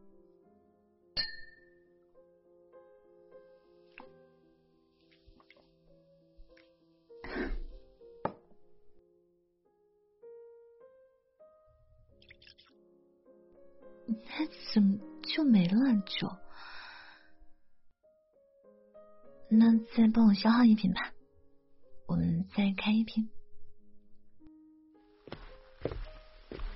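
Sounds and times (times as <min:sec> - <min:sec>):
glasses of alcohol clinking in a toast: 0:01.2 - 0:01.7
speech: 0:14.2 - 0:16.4, 0:19.5 - 0:21.2, 0:22.1 - 0:23.4.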